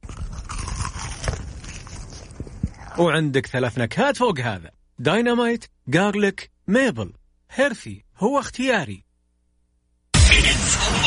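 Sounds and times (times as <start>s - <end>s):
crunching crispy fried chicken fillet: 0.0s - 3.0s
speech: 3.0s - 9.0s.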